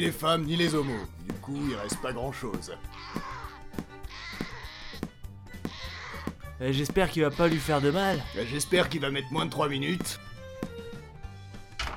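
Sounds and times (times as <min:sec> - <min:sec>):
speech: 0:00.0 - 0:03.3, 0:06.6 - 0:10.3
goat bleating: 0:02.9 - 0:06.3, 0:07.1 - 0:09.0.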